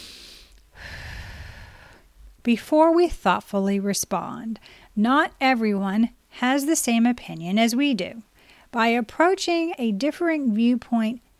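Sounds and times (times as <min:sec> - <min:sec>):
deep breath: 0:00.0 - 0:02.1, 0:04.6 - 0:04.9
speech: 0:02.4 - 0:11.2.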